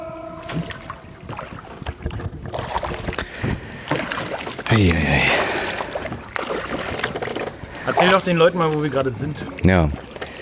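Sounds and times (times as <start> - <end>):
canoe paddle splashes on a canal: 0.0 - 10.3
speech: 0.5 - 0.8, 4.7 - 5.4, 7.9 - 10.1.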